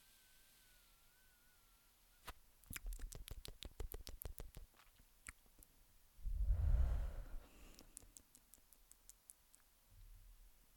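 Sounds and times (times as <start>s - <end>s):
rapid tongue clicks while inhaling smoke: 2.6s - 5.7s, 7.6s - 9.7s
soft breathy exhale of smoke: 6.4s - 7.9s.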